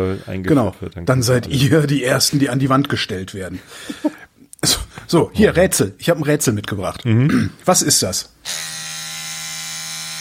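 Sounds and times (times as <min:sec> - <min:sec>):
speech: 0:00.0 - 0:08.8
laughter: 0:03.5 - 0:04.3
electric toothbrush buzzing: 0:08.4 - 0:10.1.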